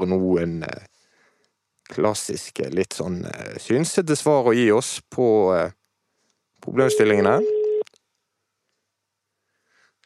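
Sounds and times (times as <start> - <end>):
speech: 0.0 - 1.0, 1.9 - 5.8, 6.6 - 7.6
steady electronic telephone ringing tone: 6.8 - 7.8.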